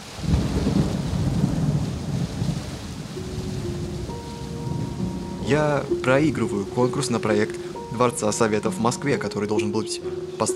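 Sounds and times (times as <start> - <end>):
deep rolling rumble of thunder: 0.0 - 7.9
steady dense rain: 0.0 - 10.5
speech: 5.5 - 10.5.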